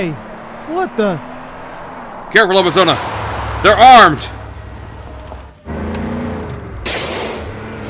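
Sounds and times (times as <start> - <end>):
speech: 0.0 - 1.3, 2.3 - 4.4
car engine roaring: 0.0 - 7.8.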